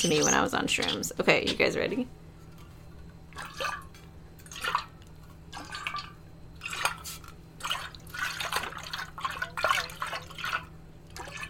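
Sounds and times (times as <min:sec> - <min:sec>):
water sloshing in a shaken metal water bottle: 0:00.0 - 0:01.8, 0:03.3 - 0:11.4
speech: 0:00.0 - 0:02.2
low steady hum: 0:00.0 - 0:11.4.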